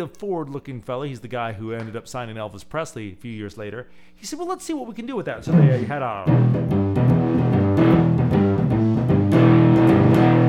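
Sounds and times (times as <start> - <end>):
speech: 0.0 - 7.4
fuzzy distorted electric guitar chugging chords through an overdriven amplifier: 5.6 - 10.4.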